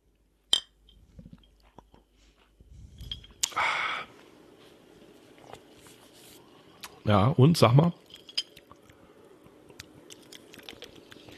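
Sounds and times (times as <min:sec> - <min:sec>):
glasses clinking in a toast: 0:00.5 - 0:01.6, 0:07.9 - 0:08.7
speech: 0:07.1 - 0:08.0.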